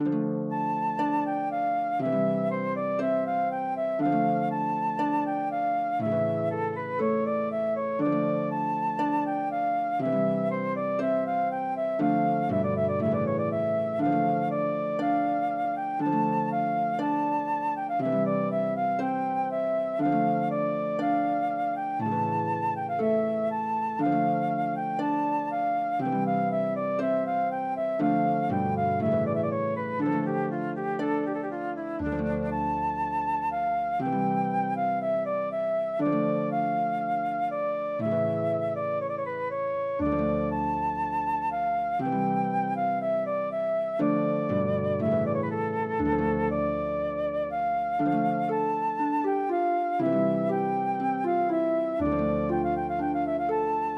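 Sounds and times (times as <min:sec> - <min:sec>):
flute: 0:00.0 - 0:53.9
harp: 0:00.0 - 0:53.9.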